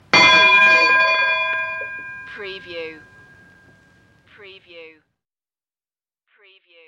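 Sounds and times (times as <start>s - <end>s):
strong single strike of vintage ship bell: 0.0s - 3.8s.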